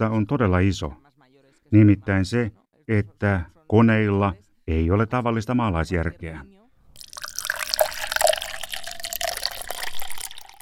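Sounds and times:
speech: 0.0s - 1.0s, 1.7s - 6.6s
water pouring into a glass: 6.9s - 10.6s.

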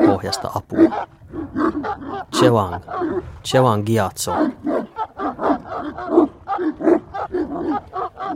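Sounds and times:
small pack of dogs barking and snarling: 0.0s - 3.4s, 4.2s - 8.3s
speech: 0.2s - 4.8s.

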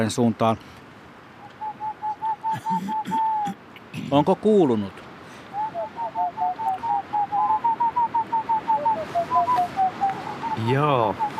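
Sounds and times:
speech: 0.0s - 0.8s, 2.5s - 3.2s, 4.0s - 5.0s, 10.6s - 11.3s
faint wind-like noise: 0.0s - 11.3s
person whistling an imitation of a boreal owl call: 1.4s - 3.6s, 5.5s - 11.3s.

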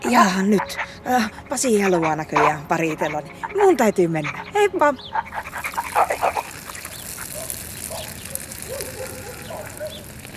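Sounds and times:
speech: 0.0s - 6.4s
dog barking: 5.2s - 6.5s, 7.2s - 10.1s.

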